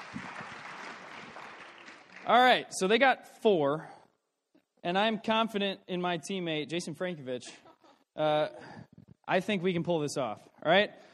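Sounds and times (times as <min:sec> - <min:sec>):
audience applause from a crowd: 0:00.0 - 0:02.5
speech: 0:02.3 - 0:04.0, 0:04.8 - 0:07.6, 0:08.2 - 0:08.7, 0:09.3 - 0:11.1.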